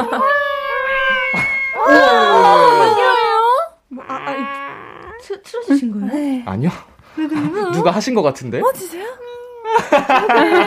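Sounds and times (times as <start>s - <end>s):
cat meowing loudly in drawn-out whiny yowls: 0.0s - 5.3s
speech: 5.3s - 10.6s
laughter: 9.7s - 10.6s.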